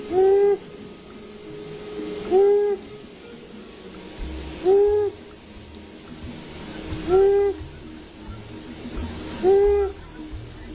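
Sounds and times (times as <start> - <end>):
male long-eared owl giving deep hooting song: 0.0 - 0.8, 2.3 - 2.9, 4.6 - 5.2, 7.1 - 7.6, 9.4 - 10.0.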